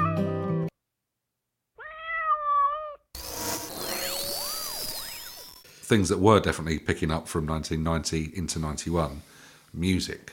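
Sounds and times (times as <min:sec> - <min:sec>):
cat meowing: 0:01.8 - 0:03.1
warbling sweeping electronic effects: 0:03.2 - 0:05.7
speech: 0:05.9 - 0:10.3.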